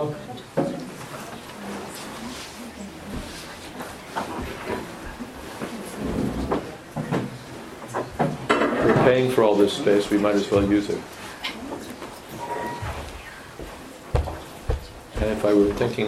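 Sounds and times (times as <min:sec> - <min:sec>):
steady murmur of indistinct voices: 0:00.0 - 0:16.0
chairs being carried and set down with wooden clunks and scrapes: 0:00.6 - 0:09.3, 0:12.0 - 0:16.0
speech: 0:09.1 - 0:11.2, 0:15.3 - 0:16.0.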